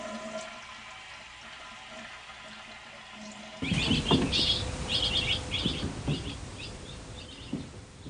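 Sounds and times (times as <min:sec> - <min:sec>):
loud rushing, flushing water: 0:00.0 - 0:07.2
low steady hum: 0:00.0 - 0:08.0
baby birds chirping in a nest inside a bathroom air vent: 0:03.6 - 0:08.0.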